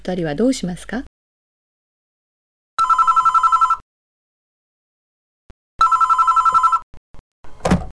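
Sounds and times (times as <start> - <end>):
speech: 0.0 - 1.1
telephone ringing in trilling bursts: 2.8 - 3.8, 5.8 - 6.9.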